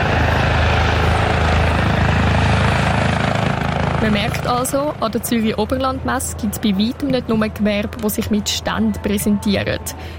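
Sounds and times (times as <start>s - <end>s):
helicopter rotor blades thudding: 0.0s - 8.2s
speech: 4.0s - 10.1s.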